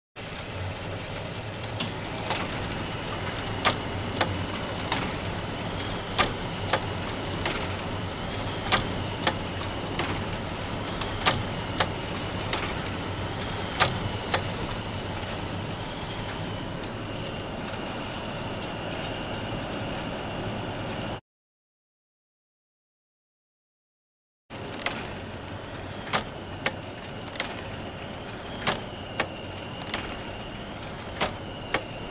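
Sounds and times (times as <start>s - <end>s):
office photocopier running: 0.2s - 21.2s, 24.5s - 32.0s.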